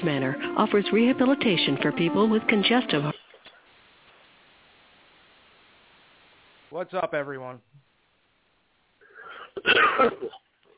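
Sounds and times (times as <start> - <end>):
speech: 0.0 - 3.2, 6.7 - 7.9, 9.6 - 10.4
wheezy breath in: 9.0 - 9.6
harsh raspy cough in cold weather in Ohio: 9.3 - 10.5.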